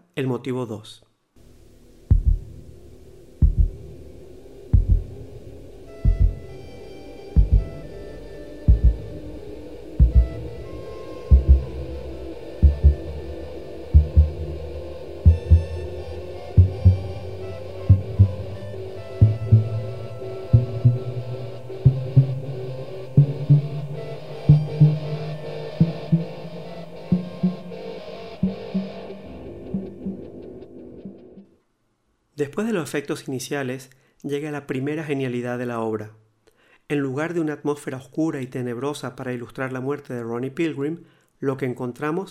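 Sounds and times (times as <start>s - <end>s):
speech: 0.2s - 1.1s, 32.6s - 36.2s, 36.9s - 42.3s
low sustained musical hum with soft tones: 1.4s - 31.2s
heartbeat sound effect thumping in double pulses: 2.0s - 10.6s, 11.3s - 12.0s, 12.6s - 13.4s, 14.0s - 16.0s, 16.6s - 22.5s, 23.1s - 26.5s.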